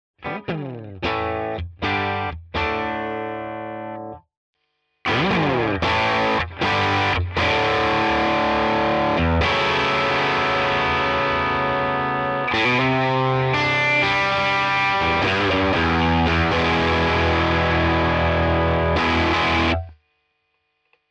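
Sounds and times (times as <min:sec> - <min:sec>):
distorted guitar through distortion pedal: 0:00.2 - 0:04.2, 0:05.0 - 0:19.9.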